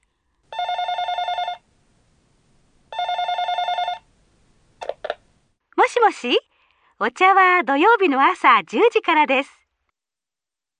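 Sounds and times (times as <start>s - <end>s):
electronic telephone ringing: 0.5s - 1.7s, 2.9s - 4.1s
speech: 6.0s - 9.6s.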